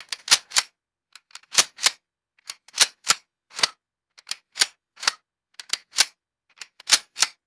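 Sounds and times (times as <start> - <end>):
cartridges loading into a rifle magazine: 0.0 - 7.4.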